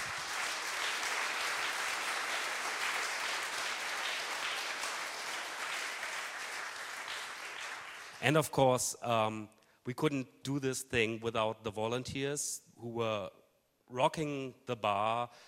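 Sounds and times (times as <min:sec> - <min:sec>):
large audience clapping: 0:00.0 - 0:08.4
speech: 0:08.2 - 0:15.4.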